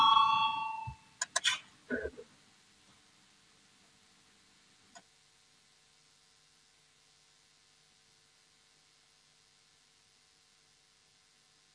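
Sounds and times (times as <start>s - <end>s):
parliamentary electric voting bell ringing: 0.0s - 1.0s.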